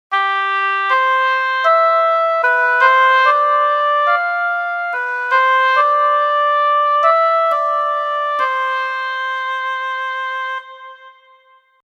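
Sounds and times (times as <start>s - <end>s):
fanfare band playing a folk song: 0.1s - 11.2s.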